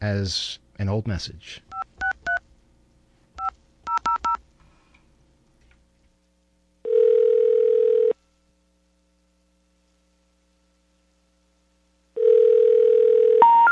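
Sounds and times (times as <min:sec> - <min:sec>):
speech: 0:00.0 - 0:01.7
long steady telephone tones: 0:06.8 - 0:08.2, 0:12.2 - 0:13.7.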